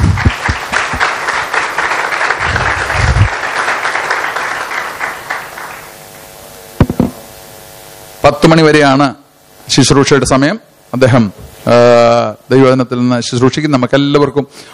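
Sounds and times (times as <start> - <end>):
church congregation clapping to welcome a preacher: 0.0 - 6.3
speech: 8.5 - 14.7.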